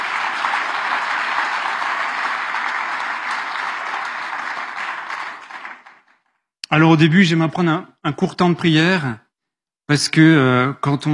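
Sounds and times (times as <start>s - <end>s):
sustained audience applause from a sizable crowd: 0.0s - 6.4s
speech: 6.8s - 9.2s, 9.9s - 11.1s.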